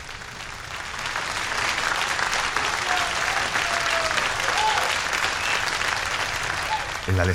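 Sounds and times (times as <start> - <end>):
crowd applauding: 0.0 - 7.3
faint whistles and cheers: 1.5 - 7.1
speech: 7.2 - 7.3.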